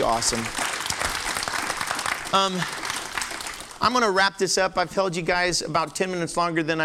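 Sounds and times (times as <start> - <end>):
speech: 0.0 - 1.0, 2.3 - 2.8, 3.8 - 6.8
church audience applauding: 0.0 - 4.1.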